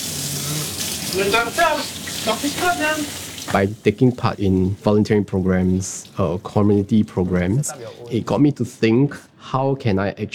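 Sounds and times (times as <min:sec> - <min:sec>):
water running from a tap while hands are washed: 0:00.0 - 0:08.0
speech: 0:01.1 - 0:10.3.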